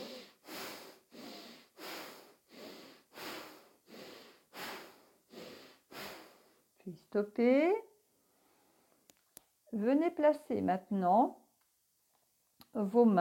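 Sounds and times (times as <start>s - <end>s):
forceful bhastrika yoga breathing through the nose: 0.0s - 6.7s
speech: 6.9s - 7.9s, 9.7s - 11.4s, 12.7s - 13.1s.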